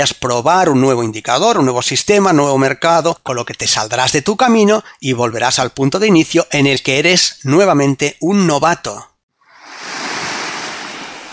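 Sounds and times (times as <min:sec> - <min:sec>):
speech: 0:00.0 - 0:09.1
sea water splashing and churning while swimming: 0:09.5 - 0:11.3.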